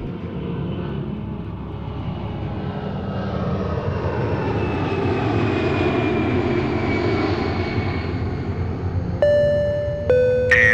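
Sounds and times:
passenger airplane engine roar during takeoff: 0:00.0 - 0:10.7
chime tones: 0:09.2 - 0:10.7.

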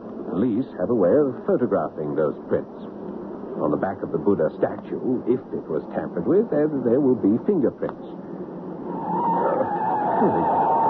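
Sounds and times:
speech: 0:00.4 - 0:03.0, 0:03.6 - 0:08.4, 0:10.2 - 0:10.6
car tires skidding as brakes and handbrake fail: 0:08.9 - 0:10.8.

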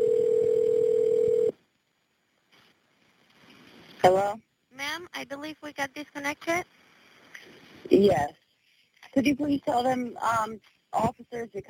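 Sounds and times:
steady clear electronic telephone tone: 0:00.0 - 0:01.6
speech: 0:04.0 - 0:06.8, 0:07.9 - 0:08.4, 0:09.2 - 0:11.6.

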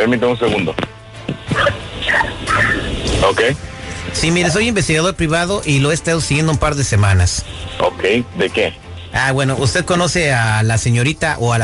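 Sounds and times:
speech: 0:00.0 - 0:01.0, 0:03.2 - 0:11.6
steady hiss of noise: 0:00.0 - 0:11.6
dog barking sharp yappy barks: 0:01.5 - 0:02.9.

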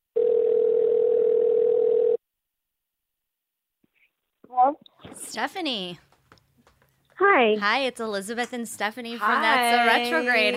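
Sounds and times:
telephone dial tone while a caller is being rung: 0:00.2 - 0:02.2
speech: 0:05.3 - 0:06.1, 0:07.2 - 0:10.5.

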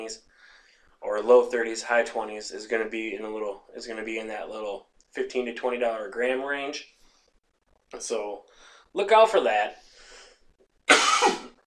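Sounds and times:
speech: 0:00.0 - 0:00.3, 0:01.0 - 0:07.0, 0:07.9 - 0:09.9
raspy exhale: 0:09.8 - 0:10.4
single harsh rough breathy cough: 0:10.9 - 0:11.6.

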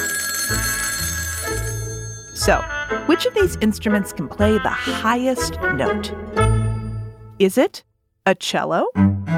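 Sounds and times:
telephone ringing with electronic tone: 0:00.0 - 0:04.0
speech: 0:02.4 - 0:06.4, 0:07.4 - 0:09.2.

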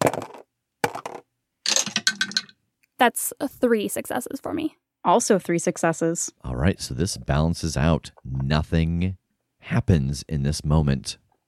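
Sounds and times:
dice clattering across a tabletop: 0:00.0 - 0:02.6
speech: 0:03.0 - 0:11.2.

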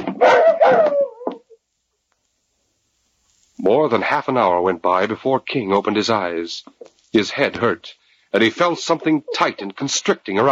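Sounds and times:
dog yelping in pain after being struck: 0:00.0 - 0:01.6
dog whimpering: 0:00.2 - 0:01.5
speech: 0:03.7 - 0:10.5.

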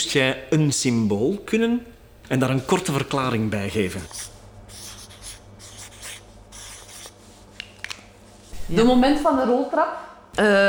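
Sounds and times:
speech: 0:00.0 - 0:04.4, 0:08.7 - 0:10.6
marker squeaking and scratching across paper: 0:04.0 - 0:07.2.

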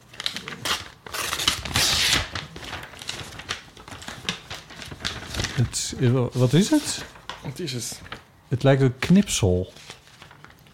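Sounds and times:
paper envelope being torn open: 0:00.0 - 0:07.3
paper rustling: 0:00.0 - 0:08.3, 0:09.0 - 0:10.7
speech: 0:05.6 - 0:09.8.

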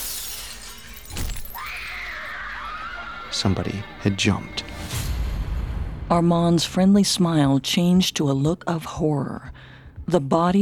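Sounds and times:
window glass shattering: 0:00.0 - 0:02.0
speech: 0:03.3 - 0:04.8, 0:06.1 - 0:10.6.

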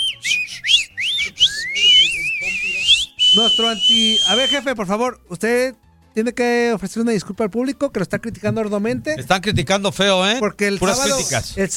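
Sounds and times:
shrill human whistle sliding in pitch and warbling: 0:00.0 - 0:04.7
speech: 0:03.4 - 0:11.7.

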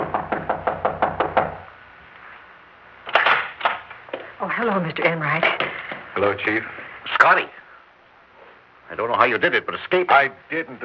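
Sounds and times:
knocking on a wooden door: 0:00.0 - 0:01.7
speech: 0:04.6 - 0:07.6, 0:08.9 - 0:10.8.

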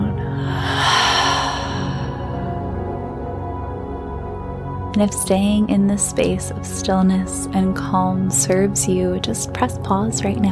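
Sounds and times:
soft steady musical drone: 0:00.0 - 0:10.5
big cleansing exhale in a guided meditation: 0:00.3 - 0:02.8
speech: 0:05.0 - 0:10.5.

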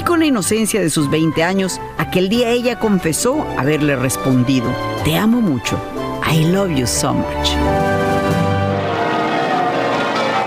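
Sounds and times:
speech: 0:00.1 - 0:08.4
large cathedral church bells pealing: 0:07.7 - 0:10.4.

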